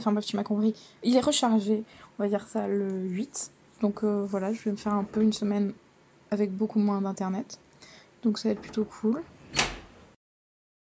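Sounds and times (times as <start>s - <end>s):
speech: 0.0s - 7.6s, 8.2s - 9.7s
door blown open by the wind banging open: 9.4s - 10.0s.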